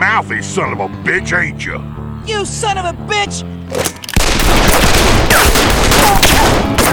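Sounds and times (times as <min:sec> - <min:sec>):
speech: 0:00.2 - 0:04.0
sustained burst of rapid overlapping gunfire: 0:04.2 - 0:06.9.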